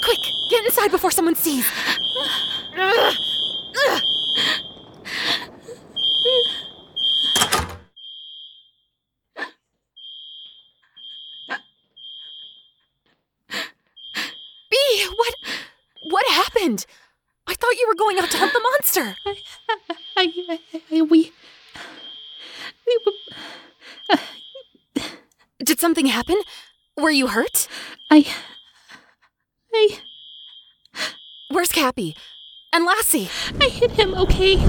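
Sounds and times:
sharp bursts of noise: 0.0s - 7.8s
fire alarm beeping: 0.0s - 9.0s, 10.0s - 13.0s, 13.6s - 29.2s, 29.8s - 34.6s
speech: 0.1s - 3.2s, 27.1s - 28.4s, 32.0s - 34.6s.

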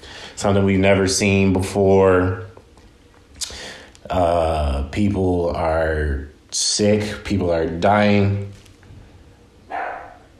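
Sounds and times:
speech: 0.4s - 2.5s, 4.1s - 8.5s
dog bark: 9.7s - 10.3s.

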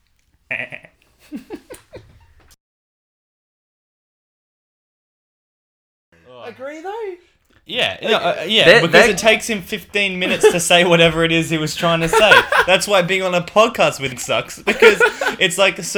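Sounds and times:
bearded goat bleating: 0.5s - 1.0s
laughter: 0.5s - 2.5s, 7.7s - 15.9s
speech: 6.6s - 15.9s.

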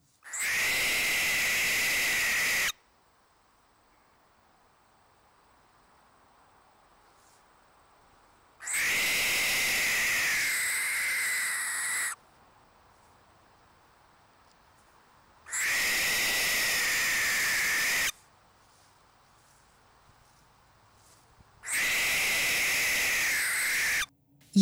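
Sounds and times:
threatened owl screech and hiss: 0.2s - 2.8s, 8.6s - 12.2s, 15.5s - 18.2s, 21.6s - 24.1s.

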